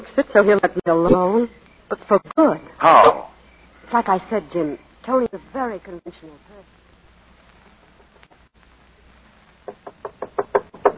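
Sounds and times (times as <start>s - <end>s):
speech: 0.1s - 6.8s
knocking on a door: 9.6s - 10.9s.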